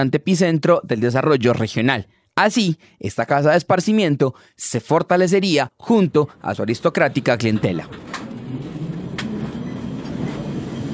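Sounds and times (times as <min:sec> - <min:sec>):
speech: 0:00.0 - 0:08.6
tram rumbling along its rails: 0:05.9 - 0:10.9
metallic clicks and squeals of tram wheels on track: 0:08.3 - 0:10.9.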